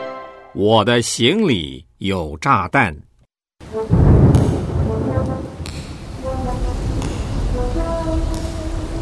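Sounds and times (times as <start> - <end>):
speech: 0.6 - 3.1
steady heavy rain: 3.6 - 9.0
loud deep roll of thunder: 3.7 - 9.0.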